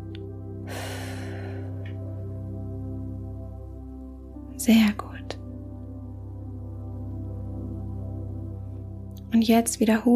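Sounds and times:
steady low musical drone: 0:00.0 - 0:10.1
person breathing in slowly during a guided relaxation exercise: 0:00.6 - 0:02.1
speech: 0:04.6 - 0:05.4, 0:09.4 - 0:10.1.

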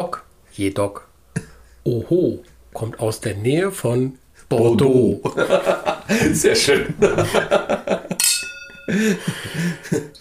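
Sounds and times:
speech: 0:00.6 - 0:01.1, 0:01.8 - 0:08.0, 0:08.9 - 0:10.1
laughter: 0:05.2 - 0:08.2, 0:08.9 - 0:10.1
two wine glasses clinking in a toast: 0:08.1 - 0:09.3.

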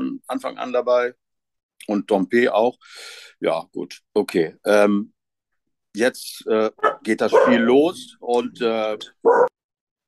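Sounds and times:
speech: 0:00.3 - 0:01.2, 0:01.8 - 0:05.2, 0:06.0 - 0:09.5
single loud dog bark: 0:06.8 - 0:07.7, 0:09.2 - 0:09.6.

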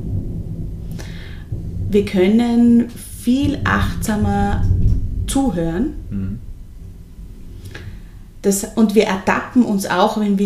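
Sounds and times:
thunder rumbling: 0:00.0 - 0:10.4
speech: 0:01.9 - 0:06.0, 0:08.4 - 0:10.4.

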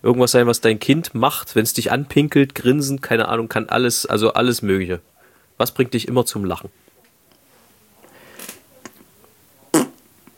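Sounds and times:
speech: 0:00.0 - 0:06.8
raspy fart: 0:09.7 - 0:10.0.

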